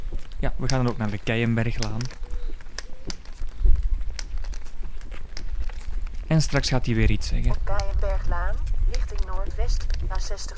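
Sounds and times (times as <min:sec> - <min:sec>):
footsteps walking on cobblestones: 0:00.0 - 0:10.5
speech: 0:00.4 - 0:02.2, 0:06.3 - 0:07.8, 0:09.6 - 0:10.5.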